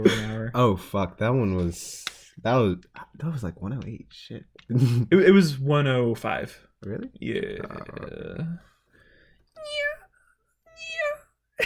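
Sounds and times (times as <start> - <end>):
speech: 0.0 - 8.7
person imitating a cat meowing: 9.6 - 10.1.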